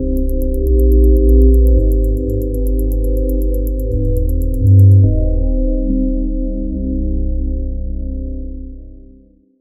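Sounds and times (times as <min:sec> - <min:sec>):
electronic lounge music: 0:00.0 - 0:06.7.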